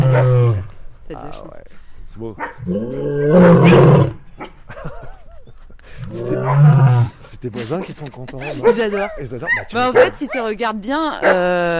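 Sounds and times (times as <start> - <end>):
lion roaring: 0.0 - 0.8, 2.6 - 4.2, 6.0 - 7.2
speech: 1.1 - 4.5, 7.4 - 11.7
laughter: 4.6 - 9.4.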